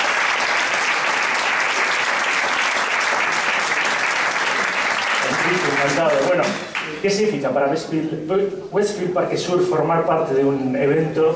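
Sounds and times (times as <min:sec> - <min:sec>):
crowd applauding: 0:00.0 - 0:07.0
speech: 0:05.8 - 0:11.3.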